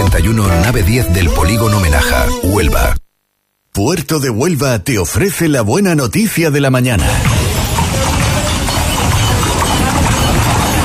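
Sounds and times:
speech: 0.3s - 3.0s, 3.8s - 7.4s
crowd and street noise at a carriage parade: 7.0s - 10.8s
horse-drawn carriage hooves clip-clopping on city-centre pavement: 7.0s - 10.8s.

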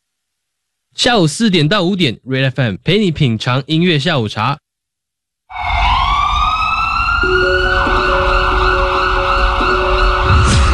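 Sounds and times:
speech: 1.0s - 4.6s
ambulance siren wailing: 5.5s - 10.7s.

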